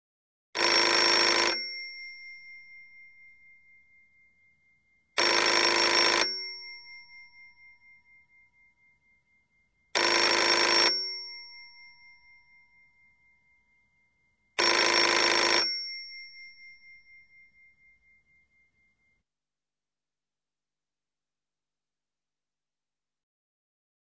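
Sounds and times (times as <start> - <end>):
European office telephone ringing: 0.6 - 3.4, 5.2 - 7.4, 10.0 - 11.7, 14.6 - 16.8.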